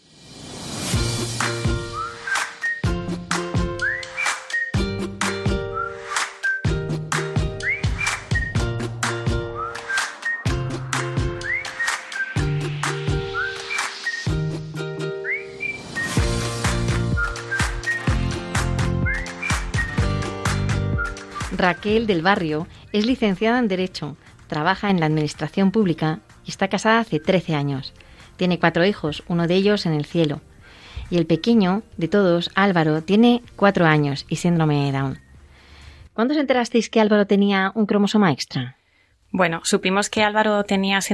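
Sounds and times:
rhythmic instrumental backing: 0.9 - 29.0
whistled melody: 1.5 - 22.3, 34.6 - 35.4
speech: 21.6 - 35.2, 36.2 - 41.1.

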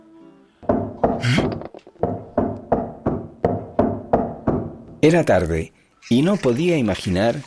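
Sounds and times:
firm knocks on a wooden door: 0.6 - 5.0
speech: 5.0 - 7.4.

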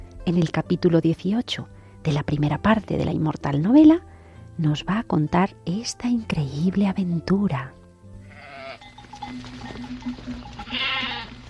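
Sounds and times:
speech: 0.3 - 7.8
flock of sheep bleating: 8.2 - 9.0, 10.5 - 11.4.

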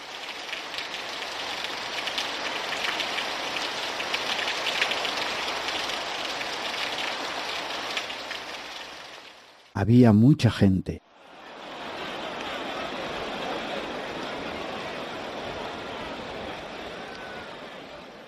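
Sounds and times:
raindrops striking a hard surface: 0.0 - 9.7
steady cold rain falling: 0.0 - 9.8, 11.2 - 18.2
speech: 9.8 - 11.0
laughter: 11.2 - 18.2.

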